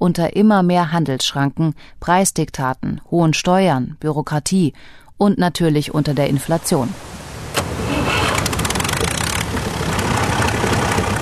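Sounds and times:
speech: 0:00.0 - 0:07.2
tractor engine running on a farm in rural Argentina: 0:06.9 - 0:11.1.

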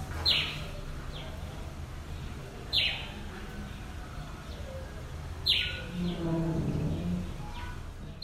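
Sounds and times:
grey-headed sparrow chirping: 0:00.1 - 0:01.5, 0:02.1 - 0:08.2.

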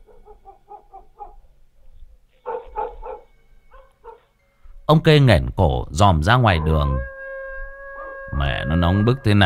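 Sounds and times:
neighbour's dog barking: 0:00.0 - 0:01.5, 0:02.4 - 0:04.3
speech: 0:04.9 - 0:07.1, 0:08.4 - 0:09.4.

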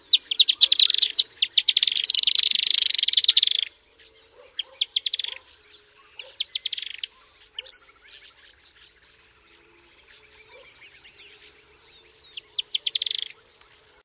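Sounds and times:
Firewood-gatherer (Anumbius annumbi) chattering: 0:00.0 - 0:03.8, 0:04.5 - 0:05.5, 0:06.1 - 0:07.9, 0:12.4 - 0:13.4.

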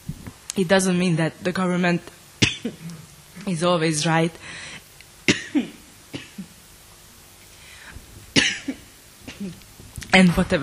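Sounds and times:
speech: 0:00.6 - 0:04.7, 0:09.4 - 0:10.6
harsh coughs: 0:05.3 - 0:06.5, 0:08.4 - 0:09.6.

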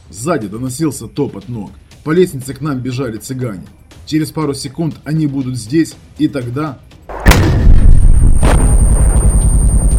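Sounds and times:
speech: 0:00.1 - 0:07.0
RPG-18 anti-tank rocket grenade fired across a ravine: 0:07.1 - 0:09.6.

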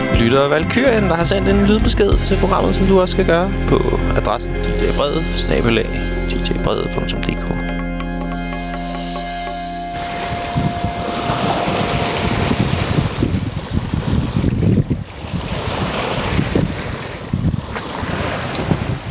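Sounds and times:
speech: 0:00.2 - 0:07.7
ocean waves off the Canary Islands roaring: 0:08.6 - 0:19.0
gusting wind buffeting the microphone: 0:10.0 - 0:19.0.

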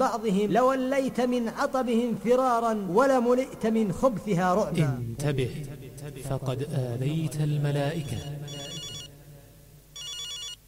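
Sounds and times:
speech: 0:00.0 - 0:08.4
mobile phone ringtone in a mosque: 0:08.1 - 0:09.1, 0:10.0 - 0:10.6.

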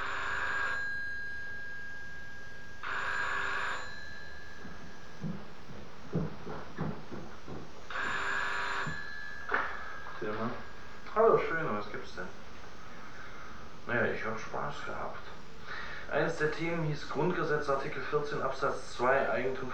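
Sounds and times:
rotary telephone ringing in a phone booth: 0:00.0 - 0:12.4
speech: 0:11.4 - 0:12.4, 0:13.9 - 0:15.4, 0:16.1 - 0:19.7.

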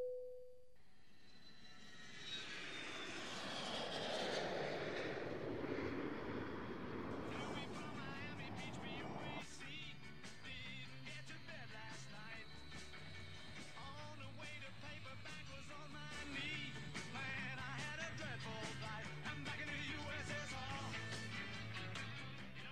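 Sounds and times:
brief steady tone: 0:00.0 - 0:00.8
airplane taking off: 0:01.0 - 0:22.6.

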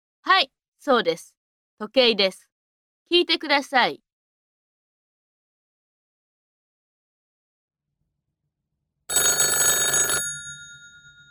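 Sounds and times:
speech: 0:00.3 - 0:02.5, 0:03.1 - 0:04.0
electric telephone bell ringing: 0:09.1 - 0:11.3.

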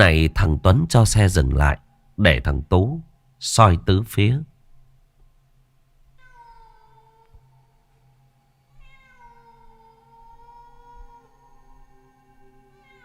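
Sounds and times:
speech: 0:00.0 - 0:04.5
cat meowing in long drawn-out wails: 0:06.2 - 0:07.4, 0:08.8 - 0:11.3, 0:12.8 - 0:13.0.

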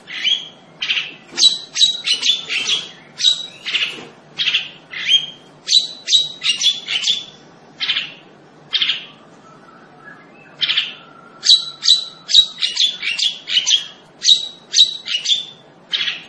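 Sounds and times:
long-tailed shrike singing lively: 0:00.0 - 0:09.3, 0:10.2 - 0:16.2.

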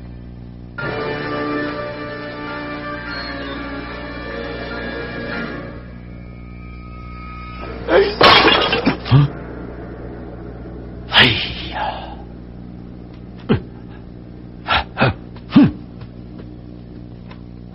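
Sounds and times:
sustained musical tones: 0:00.7 - 0:14.6
jar of wine shattering: 0:08.2 - 0:09.0.

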